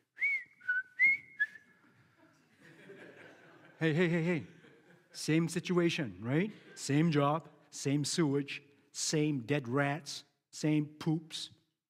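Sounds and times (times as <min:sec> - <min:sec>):
person whistling a tune: 0:00.0 - 0:01.8
laughter: 0:02.0 - 0:05.2
speech: 0:03.8 - 0:04.6, 0:05.2 - 0:11.6.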